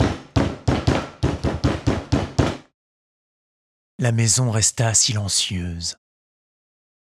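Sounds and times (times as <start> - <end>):
hard rapid knocks on a wooden door: 0.0 - 2.7
speech: 4.0 - 6.0.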